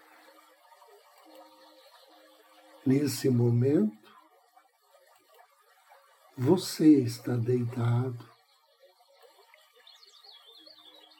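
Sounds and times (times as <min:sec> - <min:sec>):
gentle forest stream babbling and trickling: 0:00.0 - 0:10.4
speech: 0:02.8 - 0:04.0, 0:06.4 - 0:08.3
faint high bird chirps: 0:09.6 - 0:11.1.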